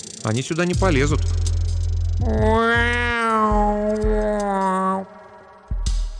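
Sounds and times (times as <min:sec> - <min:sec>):
speech: 0:00.2 - 0:01.4, 0:02.2 - 0:02.7
low rumbling background: 0:00.7 - 0:06.1
long cat-like wailing meow: 0:02.3 - 0:05.1.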